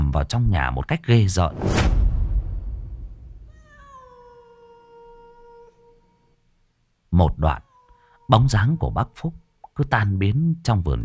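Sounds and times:
speech: 0.1s - 2.0s, 7.2s - 7.7s, 8.3s - 11.0s
low rumbling noise: 1.5s - 3.6s
cat held in arms meowing in a banana garden: 3.4s - 6.3s, 7.4s - 9.6s, 10.8s - 11.0s.

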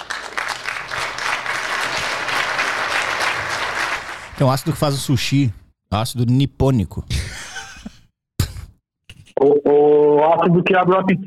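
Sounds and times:
applause from a small group in a studio: 0.0s - 4.7s
speech: 4.4s - 7.2s, 9.7s - 11.2s.

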